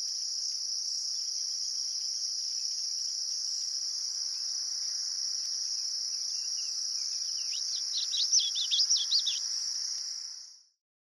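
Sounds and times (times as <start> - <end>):
Common Yellowthroat babble: 7.4 - 9.4.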